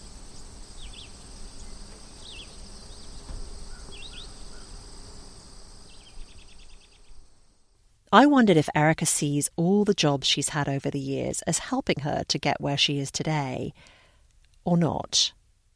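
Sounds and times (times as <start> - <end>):
scattered bird chirps: 0.0 - 5.1, 5.8 - 7.3
high-pitched chorus of spring peeper frogs: 0.0 - 5.2
speech: 8.1 - 14.0, 14.6 - 15.4.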